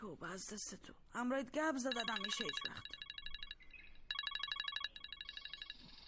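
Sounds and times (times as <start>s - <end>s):
speech: 0.0s - 3.1s
mobile phone ringtone with bright rapid electronic melody: 1.9s - 6.0s.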